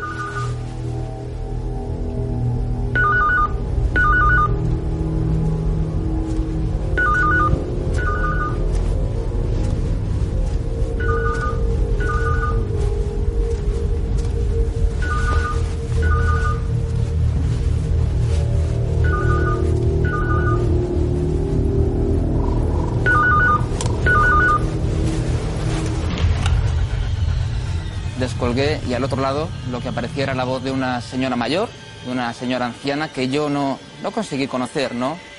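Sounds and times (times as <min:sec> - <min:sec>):
steady low rumble: 0:00.0 - 0:34.0
telephone ringing in a double-burst pattern: 0:03.0 - 0:04.5, 0:07.0 - 0:08.6, 0:11.0 - 0:12.6, 0:19.0 - 0:20.7, 0:23.1 - 0:24.6
speech: 0:28.6 - 0:35.3.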